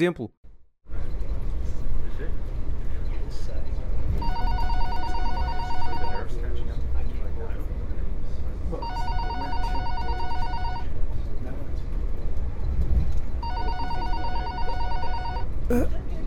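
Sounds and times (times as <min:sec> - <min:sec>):
speech: 0:00.0 - 0:00.4, 0:15.7 - 0:16.0
low rumble and clatter of a moving train: 0:00.9 - 0:04.6, 0:06.2 - 0:08.8, 0:10.9 - 0:13.4
mobile phone ringtone on a train: 0:04.2 - 0:06.3, 0:08.8 - 0:10.9, 0:13.4 - 0:15.5.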